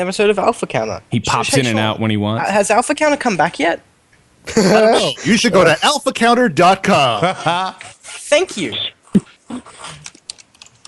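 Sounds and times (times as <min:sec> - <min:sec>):
speech: 0:00.0 - 0:10.0
laughter: 0:04.5 - 0:05.9, 0:06.9 - 0:08.0
typing on a mechanical keyboard: 0:10.0 - 0:10.8.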